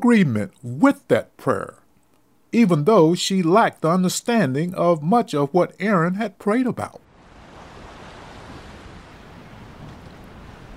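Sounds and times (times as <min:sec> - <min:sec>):
speech: 0:00.0 - 0:01.8, 0:02.5 - 0:07.0
ocean waves breaking on shore: 0:07.0 - 0:10.7.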